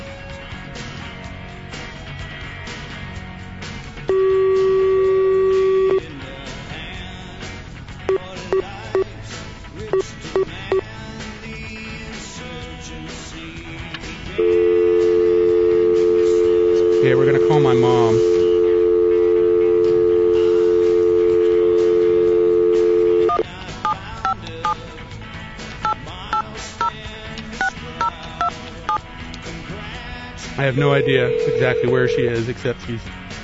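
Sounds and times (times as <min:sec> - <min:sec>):
long steady telephone ringing tone: 0:04.1 - 0:06.1, 0:08.1 - 0:09.1, 0:14.4 - 0:23.5, 0:30.6 - 0:32.4
short electronic phone-dialing beeps: 0:04.1 - 0:06.1, 0:08.1 - 0:09.1, 0:10.0 - 0:10.8, 0:14.4 - 0:24.8, 0:25.8 - 0:27.0, 0:30.6 - 0:32.4
speech: 0:30.7 - 0:33.2.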